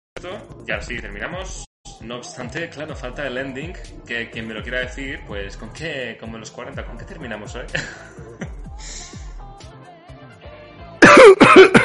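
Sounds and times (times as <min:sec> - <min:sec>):
speech: 0:00.2 - 0:09.0
loud harsh coughing: 0:11.0 - 0:11.8.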